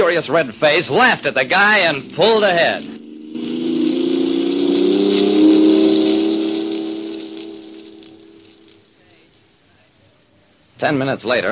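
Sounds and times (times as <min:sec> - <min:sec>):
speech: 0:00.1 - 0:02.9, 0:10.8 - 0:11.5
car engine droning in town traffic: 0:01.0 - 0:08.9.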